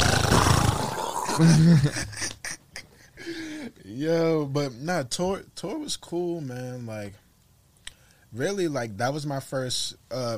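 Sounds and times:
vocal imitation of trash bag flapping in strong wind on the highway: 0.0 - 1.3
speech: 1.4 - 2.2, 3.9 - 7.2, 8.3 - 10.3.

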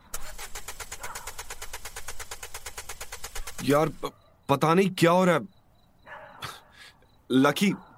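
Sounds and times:
car engine sputtering and stalling: 0.0 - 4.1
speech: 3.6 - 5.6, 7.3 - 7.9.

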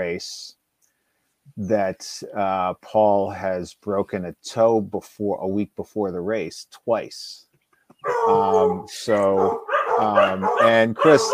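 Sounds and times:
speech: 0.0 - 0.6, 1.5 - 11.3
dog giving drawn-out barks: 8.0 - 11.3.

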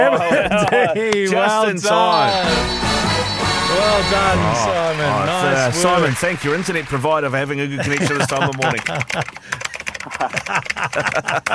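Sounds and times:
speech: 0.0 - 2.9, 3.7 - 11.5
laughter: 0.0 - 11.5
rapid typing on a computer keyboard: 7.8 - 11.5.

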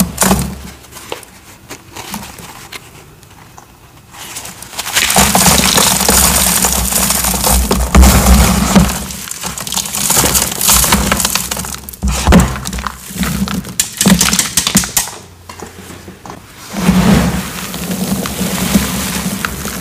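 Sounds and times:
crushing dyed cubes, chalk bombs, cornstarch crunchies and confetti reforms: 4.5 - 15.2, 16.8 - 19.7.

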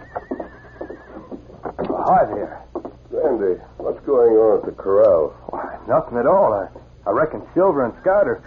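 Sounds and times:
horse neighing in a quick, shaky whinny: 0.0 - 1.5
speech: 2.0 - 2.6, 3.2 - 8.4.

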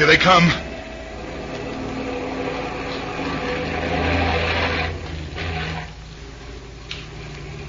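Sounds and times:
heavy truck engines rumbling: 0.0 - 7.6.

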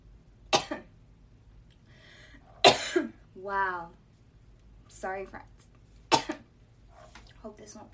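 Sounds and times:
faint breathy noise: 1.8 - 2.6
person coughing: 2.7 - 3.2
speech: 3.4 - 4.0, 5.0 - 5.6, 7.4 - 7.9.

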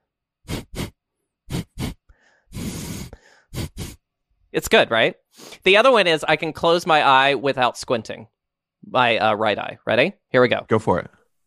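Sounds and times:
person imitating a film studio intro drum beat by exhaling through the nose: 0.5 - 4.0, 5.3 - 5.6
speech: 4.6 - 11.2.

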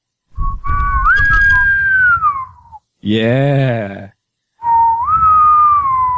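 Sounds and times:
person whistling a rising and falling sailing whistle: 0.4 - 2.8, 4.6 - 6.1
speech: 3.0 - 4.1.

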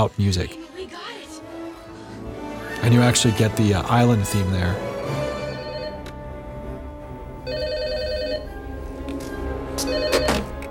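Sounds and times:
speech: 0.0 - 0.8, 2.8 - 4.9
telephone ringing with electronic trill: 5.4 - 6.1, 7.4 - 8.6, 9.8 - 10.6.

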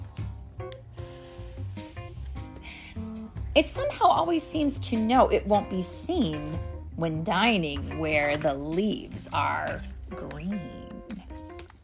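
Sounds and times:
voice imitating a hissing snake: 1.0 - 2.7
speech: 3.6 - 10.8.

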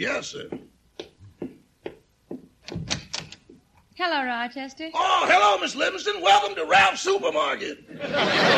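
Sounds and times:
speech: 0.0 - 0.7, 4.0 - 8.5
footsteps: 0.0 - 3.8
laughter: 7.9 - 8.5.

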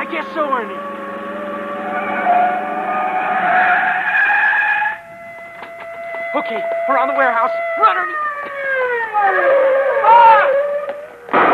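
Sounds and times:
car tires skidding to a stop near a dock: 0.0 - 6.9, 7.6 - 11.5
speech: 0.2 - 0.9, 6.4 - 8.6, 9.2 - 10.7.

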